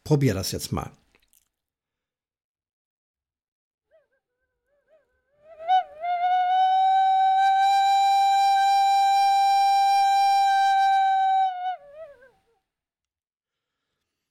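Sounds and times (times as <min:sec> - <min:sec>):
speech: 0:00.1 - 0:01.0
breathy blow settling into a steady whistling tone on G: 0:04.9 - 0:12.5.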